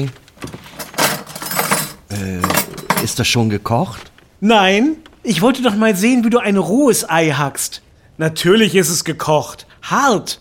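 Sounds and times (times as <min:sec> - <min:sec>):
speech: 0:00.0 - 0:00.6, 0:03.1 - 0:10.4
metallic clinking and rattling of cutlery: 0:00.5 - 0:03.2.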